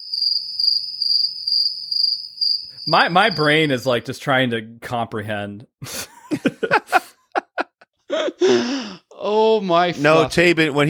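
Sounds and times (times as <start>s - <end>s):
crickets chirping: 0.0s - 3.8s
speech: 0.6s - 6.8s, 8.4s - 10.8s
laughter: 5.8s - 8.9s.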